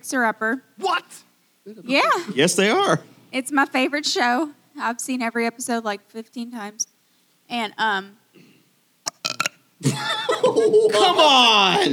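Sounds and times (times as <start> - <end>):
speech: 0.0 - 6.9, 7.5 - 8.2, 9.8 - 11.9
person burping: 9.1 - 9.6
laughter: 9.8 - 11.9.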